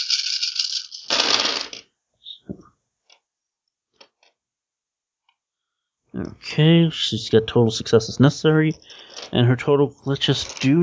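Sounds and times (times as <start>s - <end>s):
dice rattling and tumbling: 0.0s - 1.9s, 8.7s - 9.4s, 10.2s - 10.8s
speech: 6.2s - 10.8s.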